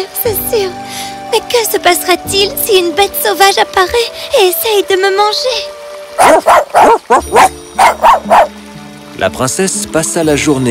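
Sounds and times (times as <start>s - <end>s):
speech: 1.4s - 8.6s, 9.2s - 10.6s
small dog barking: 6.2s - 8.5s.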